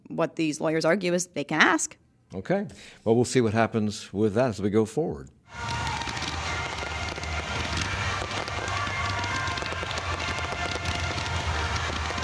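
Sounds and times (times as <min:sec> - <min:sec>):
speech: 0:00.2 - 0:05.8
fireworks at a football fan festival crackling and booming: 0:05.5 - 0:12.2.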